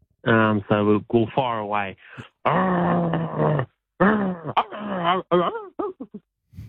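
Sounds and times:
speech: 0.2s - 6.2s
person imitating a growling dog: 2.2s - 6.2s.

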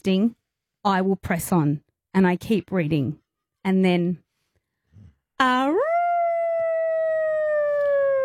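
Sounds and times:
speech: 0.0s - 4.2s, 5.4s - 5.9s
child in bed imitating a wolf howl: 5.7s - 8.2s.

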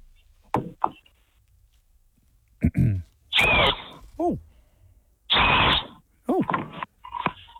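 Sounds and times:
voices: 2.6s - 4.6s, 6.2s - 7.4s
gum nut blown like a whistle shrieking: 3.3s - 4.0s, 5.3s - 6.0s.

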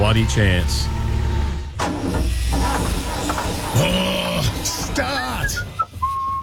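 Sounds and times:
heavy excavator engine cranking but failing to start: 0.0s - 6.0s
speech: 0.2s - 1.0s, 1.8s - 5.7s
squealing whistle-like tones ending in short high chirps: 5.0s - 6.4s.

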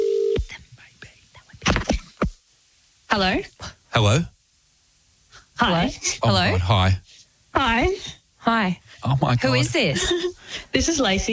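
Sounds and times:
steady telephone tone: 0.0s - 0.4s
faint whispery noise: 0.4s - 2.3s, 5.3s - 11.3s
speech: 3.1s - 4.3s, 5.6s - 11.3s.

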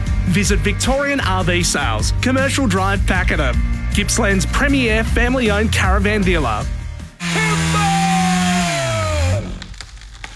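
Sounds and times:
speech: 0.3s - 7.5s
chainsaw engine droning during tree trimming and removal: 7.2s - 10.2s.

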